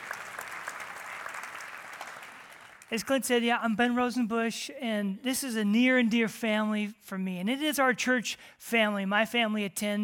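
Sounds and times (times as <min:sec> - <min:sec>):
audience applause in a church: 0:00.0 - 0:02.9
speech: 0:02.9 - 0:10.0.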